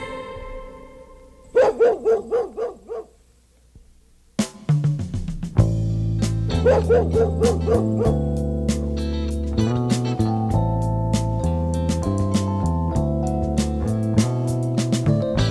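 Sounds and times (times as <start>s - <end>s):
dog barking: 1.5s - 3.2s, 6.6s - 8.2s
upbeat musical backing with sustained chords and light percussion: 4.4s - 15.4s.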